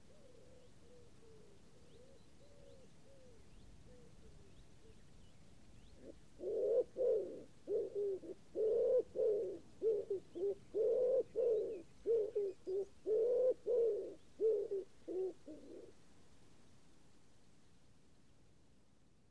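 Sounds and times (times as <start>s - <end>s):
common wood pigeon cooing: 0.0s - 5.0s, 6.0s - 16.0s.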